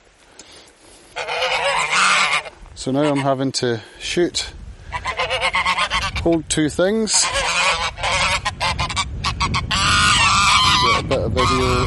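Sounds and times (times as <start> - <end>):
geese honking recorded on a phone: 1.1 - 3.4, 4.9 - 11.8
speech: 2.8 - 4.6, 6.2 - 7.4, 11.1 - 11.8.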